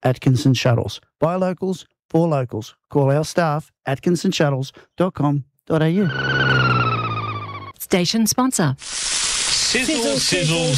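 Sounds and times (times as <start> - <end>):
speech: 0.0 - 6.8, 7.8 - 10.7
sausages sizzling: 8.8 - 10.7.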